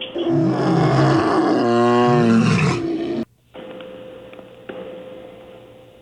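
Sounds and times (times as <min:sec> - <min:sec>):
lion roaring: 0:00.2 - 0:03.3.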